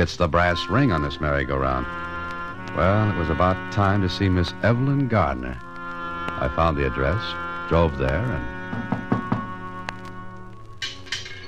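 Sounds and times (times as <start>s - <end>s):
speech: 0.0s - 2.1s, 2.7s - 5.7s, 6.4s - 9.2s
steady music: 0.0s - 11.4s
knocking on the front door of a house: 8.7s - 9.5s.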